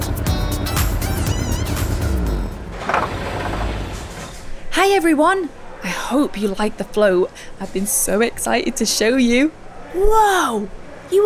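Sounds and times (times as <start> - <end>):
rainbow race car engine revving: 0.6 - 4.3
speech: 4.8 - 11.2.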